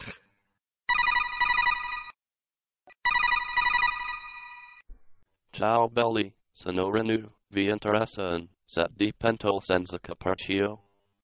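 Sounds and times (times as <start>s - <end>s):
electronic telephone ringing while a call is being placed: 0.9s - 2.2s, 2.9s - 4.9s
speech: 5.6s - 10.8s.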